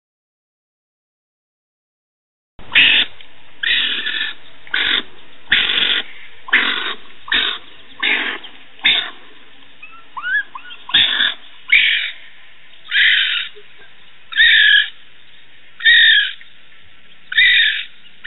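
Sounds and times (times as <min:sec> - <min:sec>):
baby raccoon calls: 0:02.7 - 0:15.0, 0:15.8 - 0:16.5, 0:17.3 - 0:18.2.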